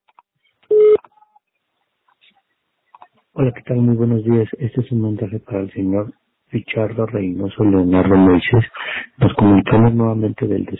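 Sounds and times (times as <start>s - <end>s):
voicemail recording tone electronic beep: 0.7s - 1.0s
speech: 3.4s - 10.7s.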